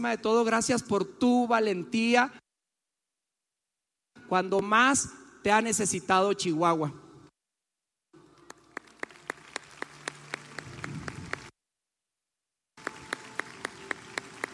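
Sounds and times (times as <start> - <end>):
speech: 0.0 - 2.4, 4.2 - 7.0
audience applause with rhythmic claps: 8.2 - 11.5, 12.8 - 14.5.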